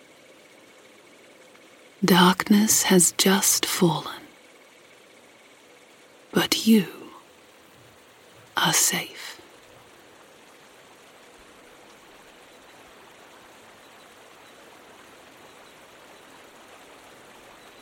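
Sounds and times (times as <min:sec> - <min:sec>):
speech: 0:02.0 - 0:04.2, 0:06.6 - 0:07.0, 0:08.7 - 0:09.4
continuous rush of flowing water: 0:07.3 - 0:17.7.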